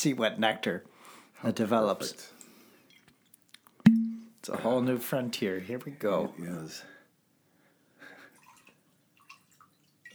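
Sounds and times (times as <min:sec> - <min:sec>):
speech: 0:00.0 - 0:02.4, 0:04.5 - 0:06.9
vodka poured into a glass: 0:03.9 - 0:04.3, 0:08.4 - 0:10.1.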